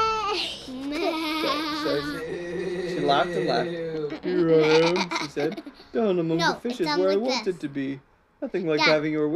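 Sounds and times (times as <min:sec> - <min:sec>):
person imitating a laughing cow with a sheep-like bleat: 0:00.8 - 0:05.6
speech: 0:03.0 - 0:09.3.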